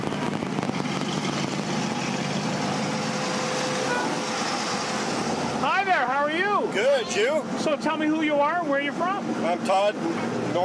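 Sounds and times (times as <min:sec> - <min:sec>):
vehicle engines idling and rumbling at an outdoor car show: 0:00.0 - 0:10.6
speech: 0:06.3 - 0:10.6.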